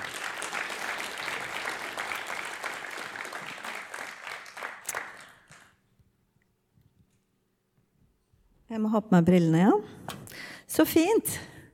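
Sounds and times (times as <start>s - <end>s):
room full of people applauding after a song: 0.0s - 5.8s
speech: 8.7s - 10.0s, 10.8s - 11.5s.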